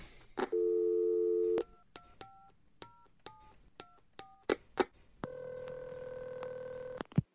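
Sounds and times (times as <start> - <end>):
phone dial tone: 0.4 - 2.4, 5.2 - 7.1
long steady phone ringing tone on the line: 0.5 - 1.8, 5.2 - 7.0.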